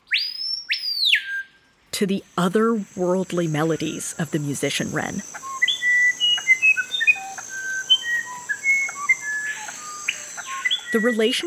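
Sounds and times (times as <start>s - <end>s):
Screaming Piha rainforest bird wide-ranging whistles: 0.0s - 1.5s, 5.4s - 11.0s
speech: 2.0s - 5.5s, 10.9s - 11.4s.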